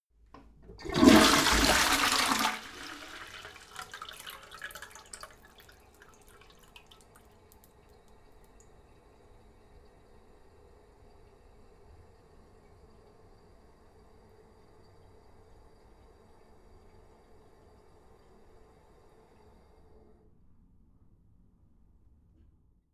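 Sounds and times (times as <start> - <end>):
short full toilet flush in a house: 0.3 - 20.1.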